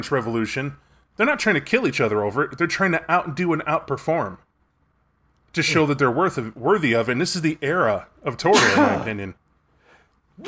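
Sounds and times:
speech: 0.0 - 4.4, 5.5 - 9.4
loud sneeze: 8.5 - 9.1.

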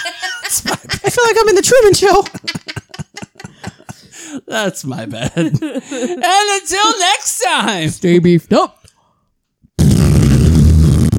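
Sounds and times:
laughter: 0.0 - 4.1, 5.0 - 6.3
speech: 0.5 - 2.6, 4.5 - 8.8
loud fart: 9.8 - 11.1.

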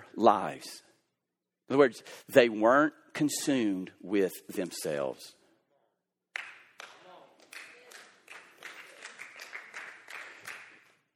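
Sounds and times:
speech: 0.2 - 0.9, 1.7 - 5.4
polite scattered applause of a golf tournament: 6.4 - 11.1.

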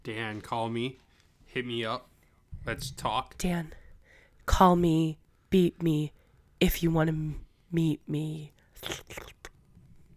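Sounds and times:
speech: 0.0 - 3.8, 4.5 - 9.3
wet airy mouth slurps into a microphone imitating eating soup: 8.8 - 9.6.

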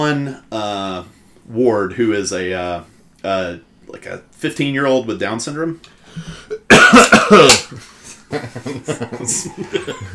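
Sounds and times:
speech: 0.0 - 10.1
loud deliberate cough: 6.5 - 7.8
laughter: 7.3 - 10.1.

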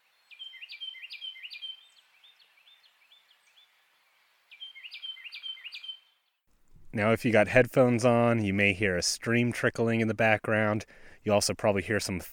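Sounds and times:
Carolina Wren singing in a snowy West Virginia national forest: 0.2 - 3.8, 4.5 - 6.4
speech: 7.0 - 12.3.

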